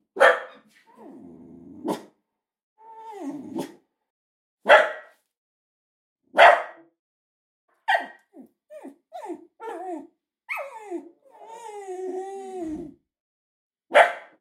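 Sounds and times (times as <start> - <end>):
dog barking, whining, yelping and whimpering: 0.2 - 1.2, 2.8 - 3.8, 7.9 - 12.9, 13.9 - 14.3.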